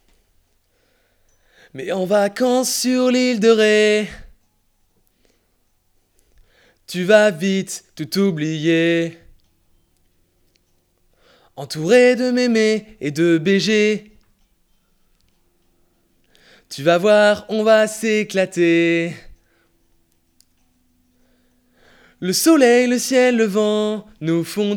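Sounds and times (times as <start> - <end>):
lead vocal: 1.7 - 4.4, 6.9 - 9.4, 11.5 - 14.3, 16.4 - 19.5, 21.8 - 24.7.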